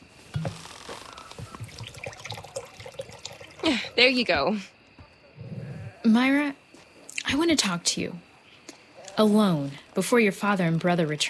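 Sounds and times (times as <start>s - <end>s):
water fetched for a cool drink pouring into a vessel: 1.4s - 4.0s
speech: 3.7s - 4.8s, 6.1s - 6.6s, 7.3s - 8.3s, 9.2s - 11.2s.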